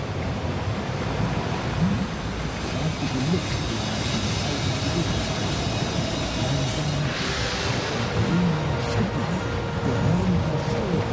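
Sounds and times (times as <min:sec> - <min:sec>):
roaring sea waves: 0:00.0 - 0:11.1.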